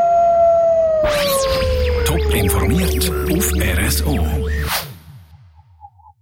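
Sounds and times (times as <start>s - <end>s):
wolf howl: 0.0s - 4.0s
speech: 2.3s - 4.9s.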